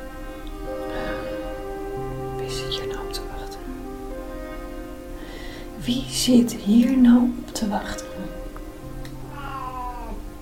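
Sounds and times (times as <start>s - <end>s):
steady low hum: 0.0s - 10.4s
speech: 5.8s - 8.3s
cat meowing: 9.2s - 10.3s.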